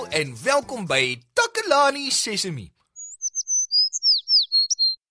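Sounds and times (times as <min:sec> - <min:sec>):
speech: 0:00.2 - 0:02.8
small bird chirping: 0:02.8 - 0:05.0.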